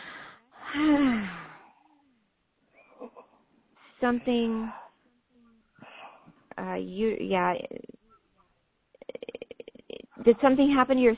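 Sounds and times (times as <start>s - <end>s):
person taking a deep breath during a lung or heart health check: 0.0s - 1.7s
speech: 0.7s - 1.4s, 4.0s - 4.8s, 6.6s - 7.9s, 10.2s - 11.1s.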